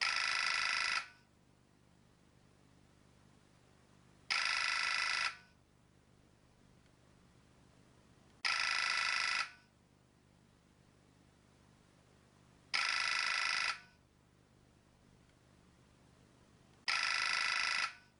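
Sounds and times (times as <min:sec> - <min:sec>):
Nokia 1200 reed ringtone: 0:00.0 - 0:01.1, 0:04.3 - 0:05.5, 0:08.4 - 0:09.6, 0:12.8 - 0:13.9, 0:16.9 - 0:18.1.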